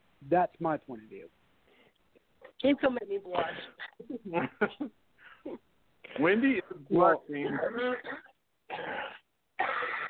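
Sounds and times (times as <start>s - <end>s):
speech: 0.2s - 1.4s, 2.6s - 9.2s
woman coughing: 3.3s - 6.4s, 7.4s - 10.0s.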